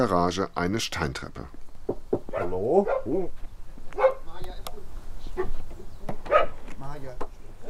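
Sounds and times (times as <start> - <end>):
speech: 0.0 - 1.6, 2.4 - 3.4
female dog barking at a property in a village near Wiesbaden Germany: 2.3 - 3.2, 4.0 - 4.3, 5.4 - 5.6, 6.3 - 6.6.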